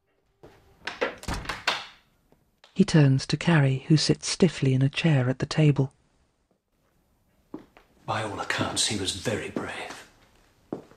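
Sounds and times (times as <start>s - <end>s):
drawing room door shutting: 0.8s - 2.0s
speech: 2.8s - 6.0s, 8.1s - 10.0s.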